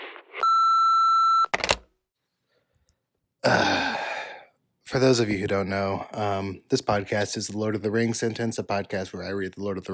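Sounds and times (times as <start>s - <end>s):
answering machine style electronic beep: 0.4s - 1.5s
speech: 5.0s - 9.9s.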